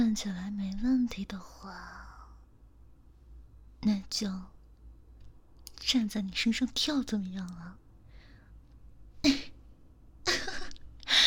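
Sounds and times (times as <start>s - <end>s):
speech: 0.2s - 2.1s, 3.8s - 4.6s, 5.8s - 7.8s, 9.2s - 9.5s
person coughing: 10.3s - 10.8s.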